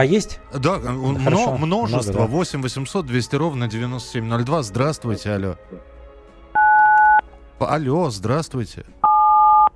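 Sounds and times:
speech: 0.0 - 5.9, 7.6 - 9.0
telephone keypad button tone: 6.6 - 7.2, 9.0 - 9.7.

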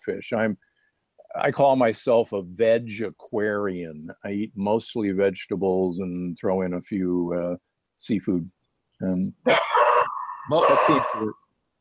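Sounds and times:
speech: 0.0 - 0.7, 1.3 - 9.8, 10.5 - 11.4
dogs barking in drawn-out bursts with a whining howl-like tone: 9.5 - 11.3.

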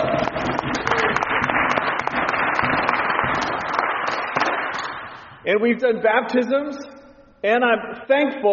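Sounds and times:
scattered shouts and whoops: 0.0 - 1.3
church audience cheering and applauding: 0.0 - 5.2
speech: 5.5 - 8.5.

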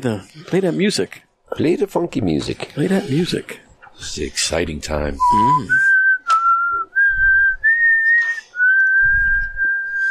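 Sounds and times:
speech: 0.0 - 5.9
person whistling a tune: 5.2 - 10.0.

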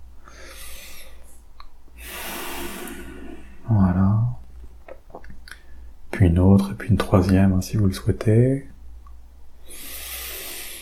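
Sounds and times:
deep breath in and out: 0.2 - 1.4, 2.0 - 3.7, 9.6 - 10.8
speech: 6.4 - 8.7.

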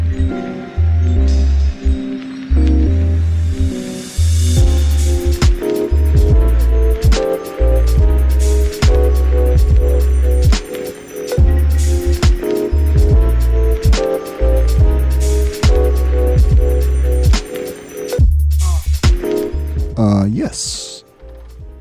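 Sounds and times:
hip-hop instrumental beat with booming bass and drums: 0.2 - 21.7.

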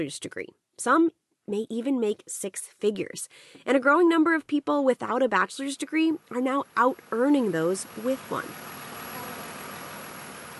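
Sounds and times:
speech: 0.0 - 8.8
car engine idling in a college automotive workshop bay: 6.6 - 10.5.

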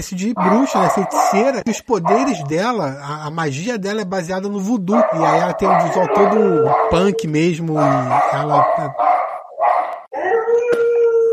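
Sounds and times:
speech: 0.0 - 9.3
dog howling loudly: 0.4 - 2.6, 4.9 - 11.3.

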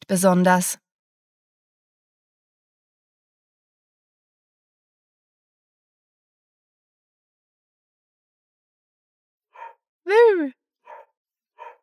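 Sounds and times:
speech: 0.1 - 0.8, 10.1 - 10.6
person imitating dog barking: 10.1 - 10.5.

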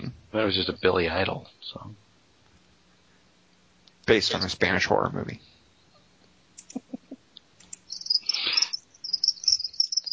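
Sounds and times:
speech: 0.3 - 2.0, 4.1 - 5.5
chorus of crickets chirping: 4.1 - 4.7, 7.7 - 10.1.

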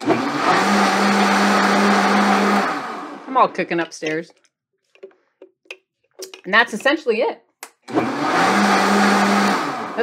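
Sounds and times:
blender whirring through a keto pumpkin spice latte mix: 0.0 - 3.7, 7.8 - 10.0
speech: 3.4 - 4.4, 6.4 - 9.4.

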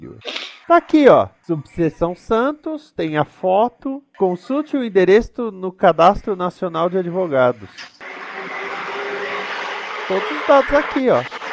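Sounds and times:
speech: 0.0 - 8.0, 10.1 - 11.4
bus passing by outside with engine roar: 8.0 - 11.5
road noise from passing bus: 8.0 - 11.5.

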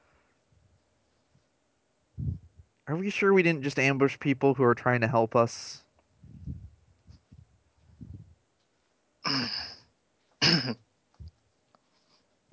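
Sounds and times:
speech: 2.9 - 5.8
woman clearing her throat: 9.3 - 9.8, 10.4 - 10.8.

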